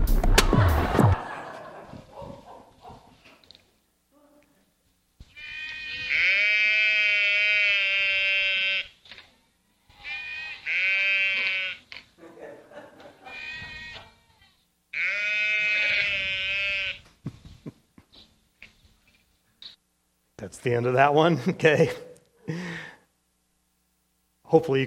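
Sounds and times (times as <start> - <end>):
laughter: 0.2 - 2.4, 12.2 - 14.2
sheep bleating: 5.3 - 9.0, 9.9 - 11.9, 13.2 - 17.0
speech: 20.6 - 22.1, 24.5 - 24.8.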